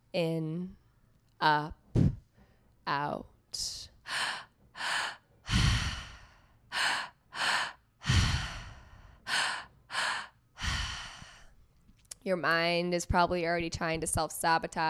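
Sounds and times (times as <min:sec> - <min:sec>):
speech: 0:00.1 - 0:00.8, 0:01.4 - 0:02.1, 0:02.9 - 0:05.0, 0:12.2 - 0:14.8
rhythmic breathwork breathing: 0:04.0 - 0:11.6.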